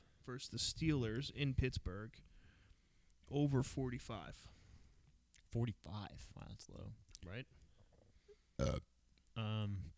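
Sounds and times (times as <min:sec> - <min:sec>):
speech: 0:00.2 - 0:02.3, 0:03.3 - 0:04.6, 0:05.5 - 0:07.6, 0:08.6 - 0:09.9
loud burps and a rumbling throaty belch: 0:08.6 - 0:08.9.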